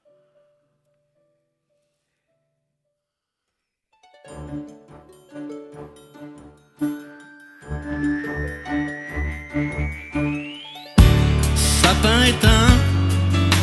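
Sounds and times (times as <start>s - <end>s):
bright tinkling bell-like notes in a song intro: 4.3s - 13.5s
steady pulsing rhythm: 4.3s - 13.6s
slow rising sweep: 6.8s - 13.6s
full band playing loudly: 11.0s - 13.6s.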